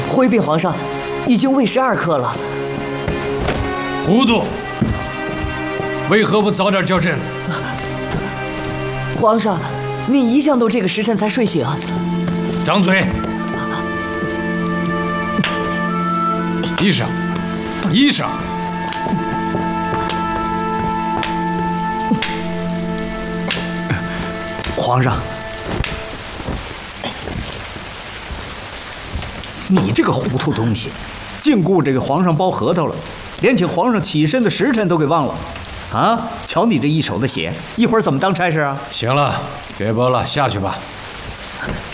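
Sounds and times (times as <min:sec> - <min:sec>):
soft tonal music: 0:00.0 - 0:32.9
steady rain falling outside: 0:00.0 - 0:41.9
speech: 0:00.1 - 0:02.8, 0:04.0 - 0:04.6, 0:06.1 - 0:07.8, 0:09.2 - 0:12.1, 0:12.7 - 0:13.3, 0:16.8 - 0:17.2, 0:17.9 - 0:19.2, 0:24.9 - 0:25.4, 0:29.7 - 0:41.0.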